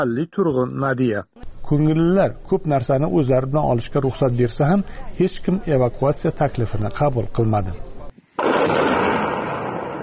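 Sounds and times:
speech: 0:00.0 - 0:08.0
explosions from a war video near Bakhmut in Ukraine: 0:08.4 - 0:10.0.

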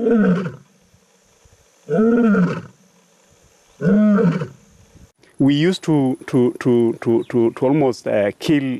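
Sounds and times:
lion roaring: 0:00.0 - 0:00.6, 0:01.9 - 0:02.7, 0:03.8 - 0:04.6
person talking rapidly: 0:05.4 - 0:08.7.

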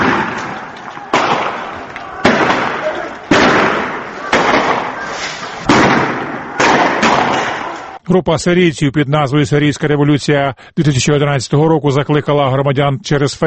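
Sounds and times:
crowd roar during street protests: 0:00.0 - 0:08.0
gunshots during street protests: 0:00.0 - 0:08.0
indistinct voices during street protests: 0:00.0 - 0:08.2
speech: 0:08.1 - 0:13.4.

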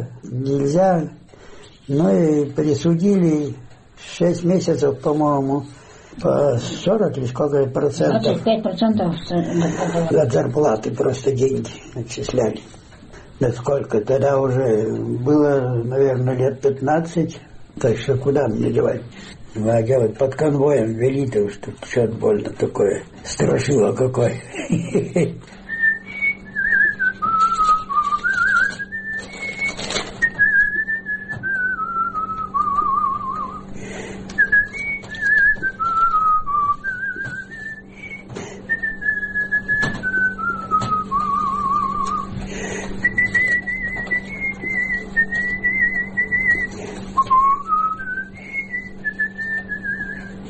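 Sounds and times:
speech: 0:00.0 - 0:01.2, 0:01.9 - 0:12.8, 0:13.4 - 0:25.6
steady low hum: 0:00.0 - 0:50.4
laughter: 0:09.3 - 0:10.4, 0:24.3 - 0:25.6
elderly man whistling a wandering melody: 0:25.6 - 0:33.7, 0:34.4 - 0:42.4, 0:43.0 - 0:50.4.

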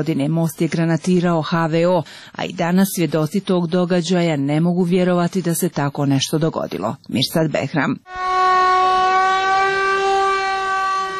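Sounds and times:
speech: 0:00.0 - 0:08.3
civil defense general alarm siren wailing in Mostar: 0:08.0 - 0:11.1.

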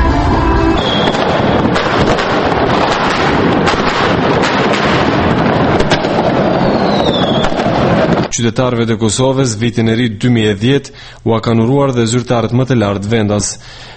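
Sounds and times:
rushing windy noise: 0:00.0 - 0:08.3
fireworks crackling and popping at New Year celebrations in Prishtina Kosovo: 0:00.8 - 0:08.4
speech: 0:08.4 - 0:13.9.

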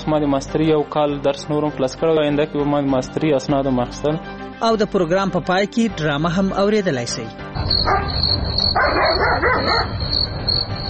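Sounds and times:
speech: 0:00.1 - 0:10.7
dog barking at night: 0:07.8 - 0:10.0.

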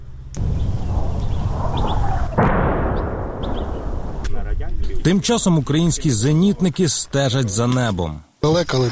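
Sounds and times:
Russian artillery shells exploding near the Bakhmut front in Ukraine: 0:00.4 - 0:04.6
birds chirping: 0:00.4 - 0:05.9
speech: 0:05.0 - 0:08.8.

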